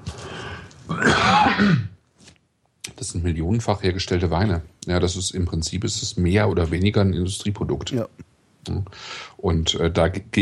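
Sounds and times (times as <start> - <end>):
person coughing with throat clearing: 0.9 - 1.9
speech: 1.6 - 1.9, 3.0 - 10.4.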